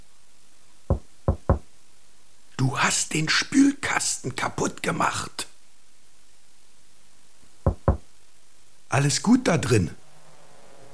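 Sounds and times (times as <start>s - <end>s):
gentle knocking on a refrigerator door: 0.9s - 1.7s, 7.6s - 8.1s
speech: 2.6s - 5.5s, 8.9s - 10.0s.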